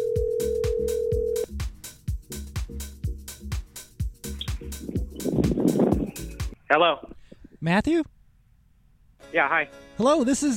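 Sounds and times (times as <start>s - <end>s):
electronic phone ring tone on outgoing call: 0.0s - 1.5s
loud drum-driven music bed: 0.0s - 6.6s
speech: 6.7s - 8.1s, 9.3s - 10.5s.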